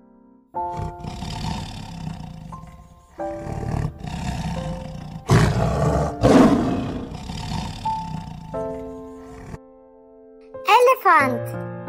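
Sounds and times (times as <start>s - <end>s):
speech: 0.5s - 1.0s, 3.2s - 3.6s, 11.0s - 11.7s
tiger roaring: 0.6s - 9.6s.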